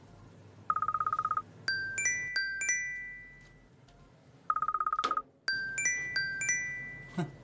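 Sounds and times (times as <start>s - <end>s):
mobile phone ringtone for an incoming call: 0.7s - 3.7s, 4.5s - 7.4s.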